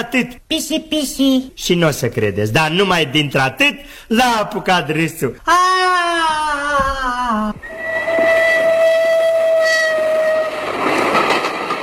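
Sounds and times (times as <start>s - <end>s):
speech: 0.0s - 8.4s
train whistle blaring: 7.6s - 10.8s
rumble and clatter of train cars pulling in: 7.6s - 11.8s.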